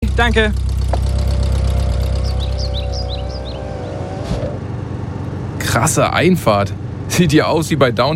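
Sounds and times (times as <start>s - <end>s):
car engine idling while parking in front of a manor house: 0.0s - 8.1s
speech: 0.2s - 0.7s, 5.7s - 8.1s
birds chirping: 0.2s - 5.9s.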